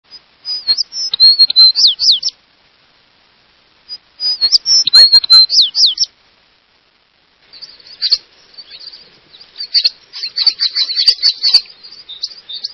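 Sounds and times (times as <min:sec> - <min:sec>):
American tree sparrow calling: 0:00.1 - 0:02.4, 0:03.9 - 0:06.1, 0:07.5 - 0:12.7.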